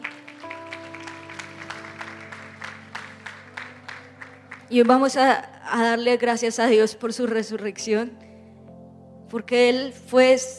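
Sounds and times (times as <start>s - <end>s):
audience applauding: 0.0s - 5.2s
sustained keyboard or organ chords: 0.0s - 10.1s
speech: 4.7s - 8.2s, 9.3s - 10.5s.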